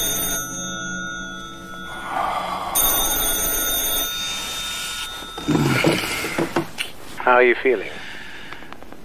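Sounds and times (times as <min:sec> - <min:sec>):
telephone ringing with a metallic bell tone: 0:00.0 - 0:06.8
speech: 0:07.3 - 0:08.1.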